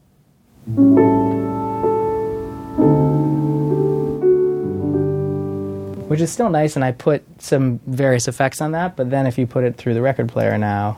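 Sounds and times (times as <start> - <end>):
clean sampled piano plug-in playing sustained chords: 0.6 - 6.9
speech: 6.2 - 10.9.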